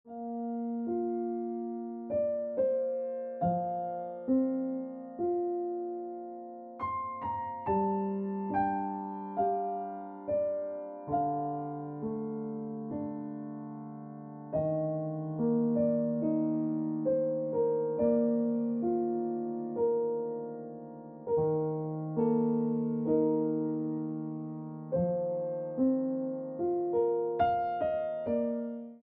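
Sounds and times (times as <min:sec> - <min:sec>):
piano music: 0:00.1 - 0:29.0.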